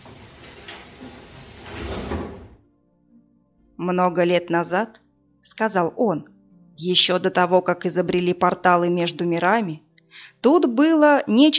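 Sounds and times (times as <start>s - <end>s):
modern chrome elevator doors sliding shut with mechanical rumble and hiss: 0.0s - 2.6s
speech: 3.8s - 11.5s.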